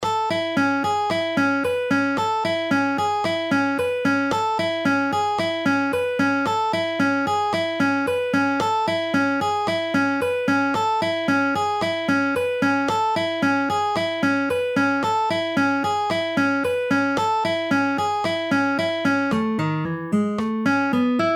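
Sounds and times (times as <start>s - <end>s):
guitar at half speed: 0.0s - 21.3s.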